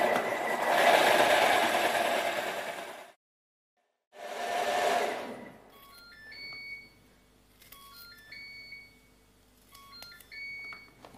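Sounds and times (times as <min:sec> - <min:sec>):
blender whirring while mixing cream: 0:00.0 - 0:03.2, 0:04.2 - 0:05.6.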